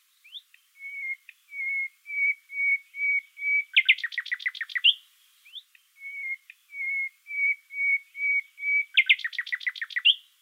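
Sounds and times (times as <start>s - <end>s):
nightingale singing its whistling motif: 0.0s - 10.4s.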